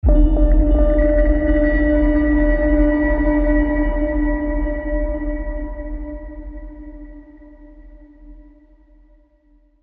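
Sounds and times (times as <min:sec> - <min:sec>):
ominous ping: 0:00.0 - 0:07.0.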